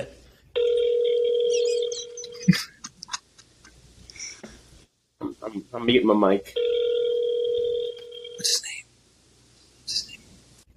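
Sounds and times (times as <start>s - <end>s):
phone ringback tone through a speakerphone: 0.6s - 2.4s, 6.6s - 8.4s
speech: 2.5s - 2.7s, 5.7s - 6.6s.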